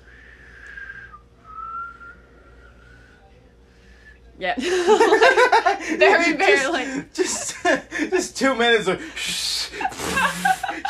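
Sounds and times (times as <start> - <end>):
person whistling by breathing inwards: 0.0 - 4.3
speech: 4.4 - 10.8
laughter: 4.6 - 8.2, 9.2 - 10.8.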